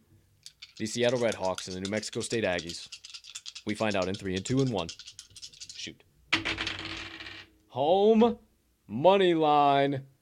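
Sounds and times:
dice rattling in shakes: 0.4s - 7.5s
speech: 0.8s - 3.0s, 3.6s - 5.1s, 7.8s - 10.1s.

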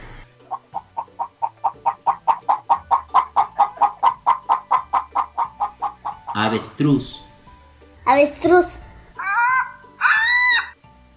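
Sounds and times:
hen clucking: 0.4s - 6.6s, 9.2s - 10.8s
speech: 6.4s - 7.2s, 8.1s - 8.8s.

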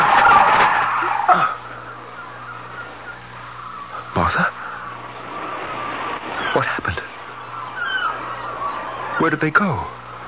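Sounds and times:
flamingo wings flapping: 0.0s - 1.2s, 4.6s - 9.7s
flock of flamingos squawking harshly in an attack: 0.0s - 10.2s
speech: 9.2s - 10.0s.

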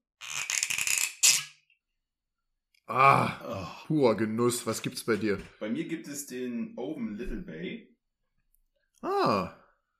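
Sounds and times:
cork squeaking and creaking as it is twisted from a whisky bottle: 0.2s - 1.7s
speech: 2.9s - 7.9s, 9.0s - 9.6s.

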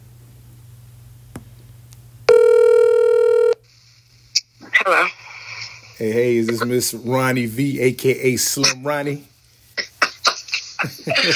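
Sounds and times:
telephone ringing tone while a call is being placed: 2.3s - 3.6s
speech: 4.9s - 5.2s, 6.0s - 9.3s, 10.8s - 11.3s
laughter: 9.9s - 11.3s.

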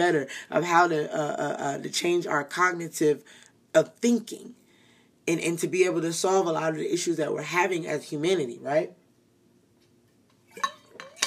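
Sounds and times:
speech: 0.0s - 4.6s, 5.3s - 9.0s, 10.6s - 10.8s
light clinks of glass while getting water: 10.5s - 11.2s.

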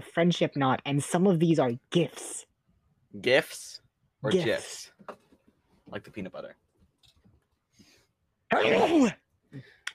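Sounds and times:
speech: 0.2s - 2.5s, 3.1s - 5.2s, 5.9s - 6.6s, 8.5s - 9.7s
person sneezing: 8.6s - 9.2s.

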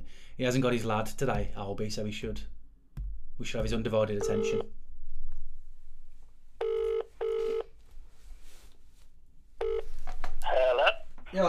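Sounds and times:
faint noise: 0.0s - 11.4s
speech: 0.4s - 2.6s, 3.4s - 4.7s
telephone ringing tone heard down the line: 4.2s - 4.7s, 6.6s - 7.7s, 9.6s - 9.9s.

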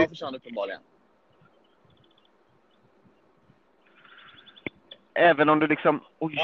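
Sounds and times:
speech: 0.0s - 1.0s, 5.2s - 6.4s
small bird chirping: 1.2s - 5.2s.

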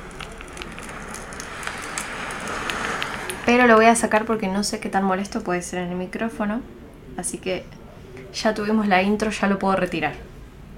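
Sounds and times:
sea waves: 0.0s - 4.4s
campfire crackling with sharp pops: 0.0s - 4.6s
speech: 3.5s - 10.3s.

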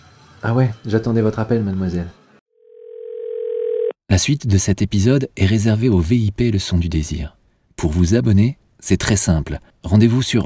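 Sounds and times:
speech: 0.4s - 2.2s, 4.1s - 10.4s
single-pitched telephone tone: 2.6s - 4.0s.

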